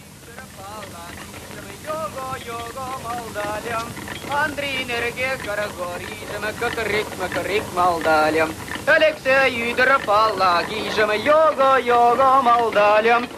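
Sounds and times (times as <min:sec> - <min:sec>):
faint outdoor rush: 0:00.0 - 0:13.3
man singing a national folk song while rowing a railway handcar: 0:00.0 - 0:13.3.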